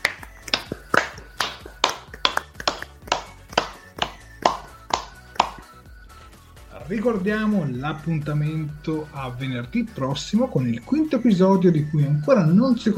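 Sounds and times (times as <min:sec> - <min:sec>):
one person clapping by hand: 0:00.0 - 0:05.8
speech: 0:06.9 - 0:12.9.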